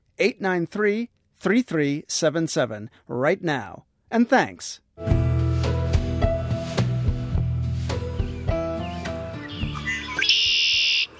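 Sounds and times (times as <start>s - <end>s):
speech: 0.2s - 5.3s
steady musical background: 5.0s - 10.4s
red-winged blackbird chirping and giving a buzzy trill: 8.0s - 11.1s.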